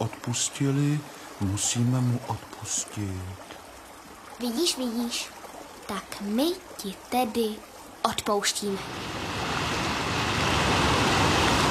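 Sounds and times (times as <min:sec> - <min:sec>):
speech: 0:00.3 - 0:03.5, 0:04.4 - 0:09.4
ocean waves rushing: 0:08.6 - 0:11.6.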